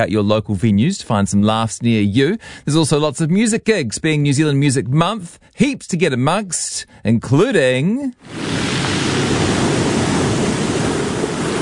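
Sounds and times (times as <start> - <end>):
speech: 0.0 - 8.8
large ocean waves crashing: 8.2 - 11.6.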